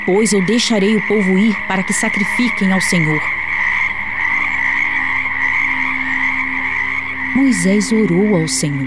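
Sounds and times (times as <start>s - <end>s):
speech: 0.0s - 3.4s, 7.4s - 8.8s
dense chorus of frogs croaking: 0.0s - 8.8s.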